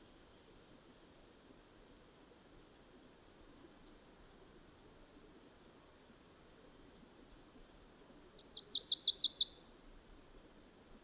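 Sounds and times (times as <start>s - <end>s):
bird song of high sweet chirped notes: 8.4s - 9.6s.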